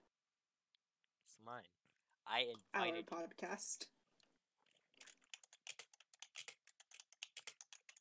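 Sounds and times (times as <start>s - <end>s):
speech: 1.3s - 4.0s
rapid computer keyboard typing: 5.0s - 7.9s.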